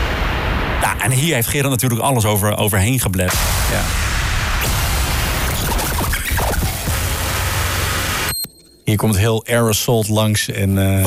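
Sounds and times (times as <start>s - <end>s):
loud sustained roar of a massive explosion sound effect: 0.0s - 1.3s, 3.3s - 8.3s
crackling bursts of an explosion sound effect: 0.0s - 1.4s, 3.3s - 8.4s
speech: 1.0s - 4.1s, 8.9s - 11.0s.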